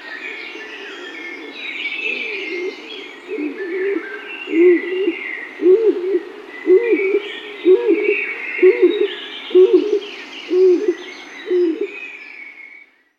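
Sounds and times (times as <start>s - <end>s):
birds chirping and twittering: 0.0s - 13.1s
Stock dove calling in deep rounded coos: 0.5s - 12.0s.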